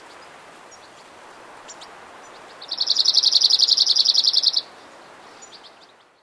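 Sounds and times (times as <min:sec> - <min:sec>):
background hiss: 0:00.0 - 0:06.2
Cirl bunting song: 0:02.7 - 0:04.6.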